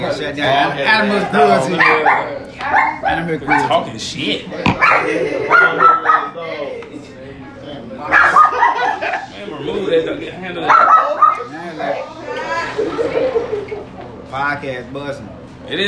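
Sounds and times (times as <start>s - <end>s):
speech: 0.0s - 6.6s, 9.6s - 11.2s, 14.3s - 15.8s
small dog yapping and barking: 1.8s - 3.8s, 4.8s - 6.4s, 8.1s - 8.8s, 10.7s - 11.5s
laughter: 4.6s - 6.1s, 8.2s - 10.2s, 12.3s - 14.1s.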